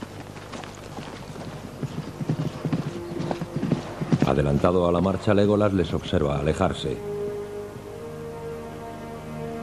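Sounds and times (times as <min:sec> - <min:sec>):
horse hooves clip-clopping as two mounted riders move ahead: 0:00.0 - 0:05.2
speech: 0:04.3 - 0:07.1.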